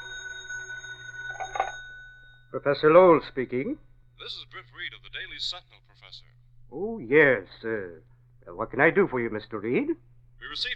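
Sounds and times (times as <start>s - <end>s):
telephone bell ringing: 0.0s - 2.5s
faint tone: 0.0s - 10.7s
speech: 2.5s - 10.7s.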